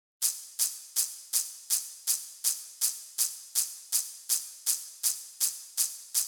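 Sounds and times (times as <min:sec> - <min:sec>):
isolated hi-hat double cymbal worked by the drummer's foot: 0:00.2 - 0:06.2.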